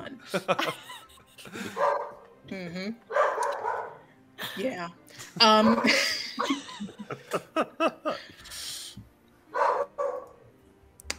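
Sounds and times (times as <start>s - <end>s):
speech: 0.2s - 3.2s, 4.6s - 8.0s
laughter: 0.3s - 1.8s, 5.2s - 8.4s
dog barking: 1.8s - 2.2s, 3.1s - 4.0s, 9.5s - 10.4s.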